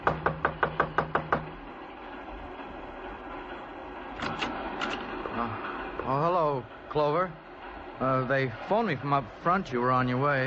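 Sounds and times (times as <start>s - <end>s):
sharp knocks on a door: 0.0s - 1.6s
speech: 5.4s - 7.4s, 8.0s - 10.4s.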